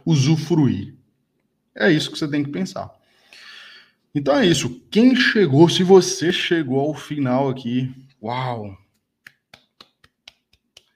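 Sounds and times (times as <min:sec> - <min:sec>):
speech: 0:00.1 - 0:01.0, 0:01.8 - 0:03.5, 0:04.2 - 0:08.8
one person clapping: 0:08.9 - 0:10.9.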